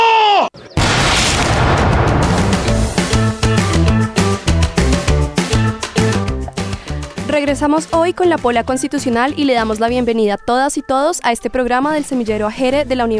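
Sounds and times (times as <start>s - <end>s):
person shouting: 0.0s - 0.5s
dramatic rhythmic music with heavy percussive hits: 1.4s - 7.5s
speech: 7.4s - 13.1s.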